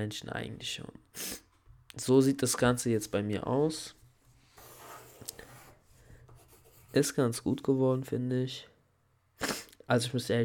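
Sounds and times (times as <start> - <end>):
speech: 0.0 - 1.4, 2.0 - 4.0, 6.9 - 8.7, 9.4 - 10.4
pen scratching and gliding across paper in short strokes: 4.5 - 7.2.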